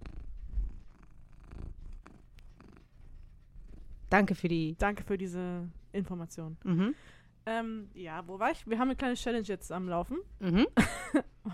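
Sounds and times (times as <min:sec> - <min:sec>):
domestic cat purring: 0:00.0 - 0:05.9
speech: 0:04.1 - 0:11.5.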